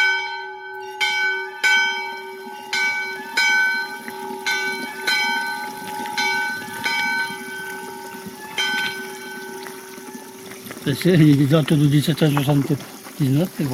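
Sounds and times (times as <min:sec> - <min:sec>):
storm bell ringing in a granite stone bell tower dated 1779: 0:00.0 - 0:09.9
speech: 0:10.9 - 0:13.7.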